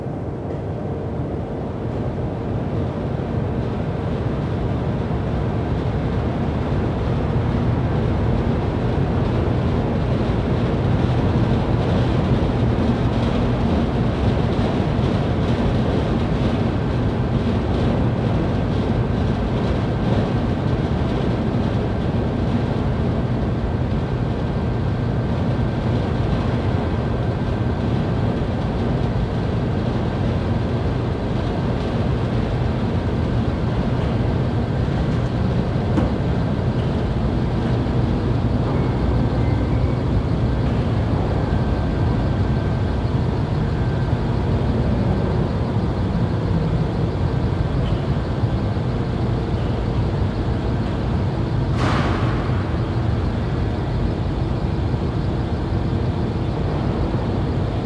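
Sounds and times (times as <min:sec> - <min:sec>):
steel mill ambience: 0:00.0 - 0:57.8.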